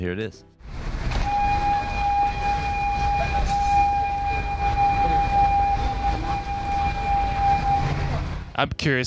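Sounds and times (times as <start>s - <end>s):
speech: 0.0s - 0.9s, 8.6s - 9.0s
steady whistle tone, possibly from a train: 1.2s - 8.2s.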